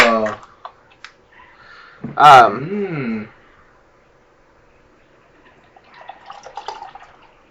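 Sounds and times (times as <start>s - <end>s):
speech: 2.0s - 3.4s
Mosaic India Pale Ale beer pouring into a glass: 5.5s - 7.4s.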